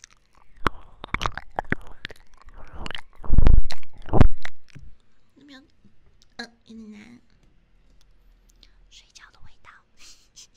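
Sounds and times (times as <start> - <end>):
lips scraping across an object: 0.0 - 5.0.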